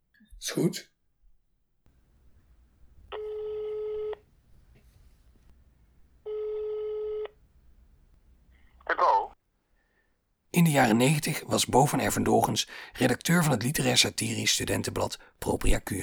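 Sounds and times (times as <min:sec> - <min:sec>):
speech: 0:00.4 - 0:00.9, 0:10.6 - 0:16.0
telephone ringback tone: 0:03.1 - 0:04.2, 0:06.2 - 0:07.4.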